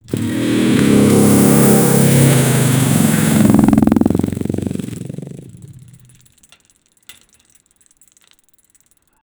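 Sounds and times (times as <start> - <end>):
heavy metallic crash of a collision: 0.0 - 6.0.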